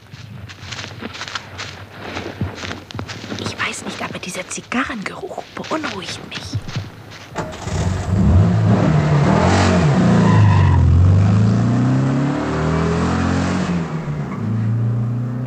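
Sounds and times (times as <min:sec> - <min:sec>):
speech: 0:04.2 - 0:06.6
car engine accelerating and shifting: 0:07.4 - 0:15.4.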